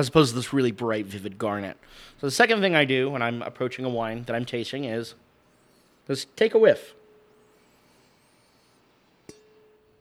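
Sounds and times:
speech: 0.0s - 5.2s, 6.1s - 7.0s
quiet hiss: 0.0s - 9.9s
wine glass tapped at a wine tasting ringing: 9.3s - 9.9s.

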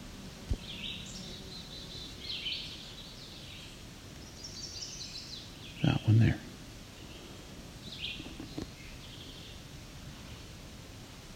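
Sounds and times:
chestnut-sided warbler singing: 0.6s - 6.4s, 7.0s - 9.7s
speech: 5.8s - 6.4s.

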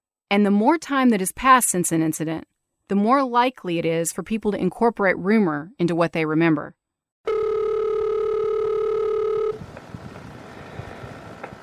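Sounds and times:
speech: 0.3s - 6.8s
telephone line tone before a call: 7.3s - 9.6s.

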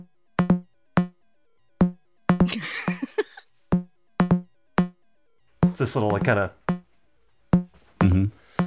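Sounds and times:
Moog DFAM analog percussion synthesizer playing a sequenced rhythm clocked from a computer: 0.0s - 1.2s, 1.8s - 3.1s, 3.7s - 5.0s, 5.6s - 6.9s, 7.6s - 8.6s
laughter: 2.5s - 3.4s
speech: 5.8s - 6.6s.

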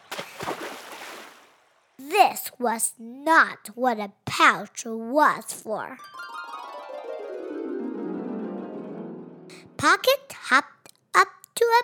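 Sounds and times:
water splashing out: 0.0s - 1.8s
speech: 2.0s - 6.2s, 9.8s - 11.8s.

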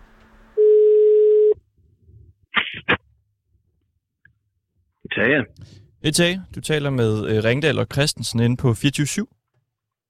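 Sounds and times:
telephone ringback tone while calling: 0.6s - 1.6s
speech: 5.2s - 9.4s.

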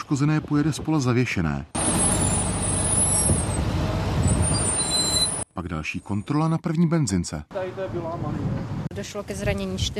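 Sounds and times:
speech: 0.1s - 2.0s, 5.6s - 9.9s
heavy tow truck engine droning on a motorway: 1.8s - 5.4s.

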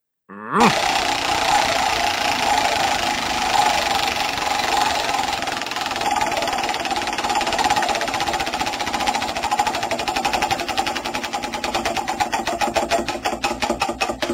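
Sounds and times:
prize wheel spinning with pointer clicking: 0.6s - 14.3s.

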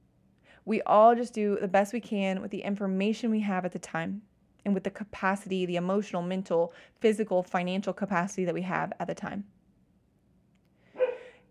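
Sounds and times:
speech: 0.6s - 9.6s
dog barking: 11.0s - 11.4s.

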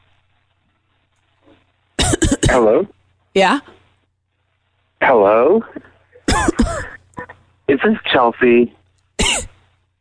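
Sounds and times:
harsh cough: 2.0s - 2.8s, 6.2s - 7.3s, 9.2s - 9.6s
speech: 2.6s - 3.8s, 5.0s - 5.9s, 7.7s - 8.8s.

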